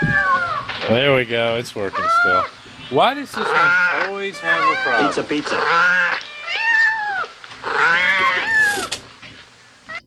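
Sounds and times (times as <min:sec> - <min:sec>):
cat chirp-like call: 0:00.0 - 0:00.7, 0:03.4 - 0:09.0
cat meowing: 0:00.0 - 0:00.8, 0:01.8 - 0:02.5, 0:03.4 - 0:09.0
rustle: 0:00.0 - 0:10.0
speech: 0:00.9 - 0:06.3.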